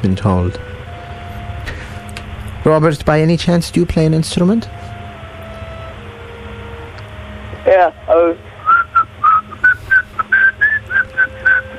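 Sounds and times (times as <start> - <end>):
speech: 0.0 - 0.9, 2.6 - 4.8, 7.7 - 8.5
person whistling a short lively tune: 8.6 - 11.7.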